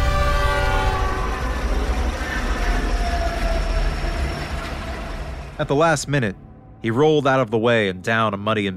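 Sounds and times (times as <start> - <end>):
train horn blaring: 0.0 - 5.6
train cars rumbling: 0.0 - 7.7
speech: 5.6 - 8.7.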